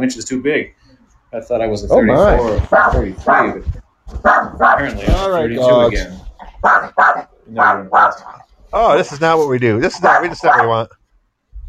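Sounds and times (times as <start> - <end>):
speech: 0.0 - 11.0
dog barking: 2.7 - 3.6, 4.2 - 4.9, 6.6 - 8.4, 10.0 - 10.8.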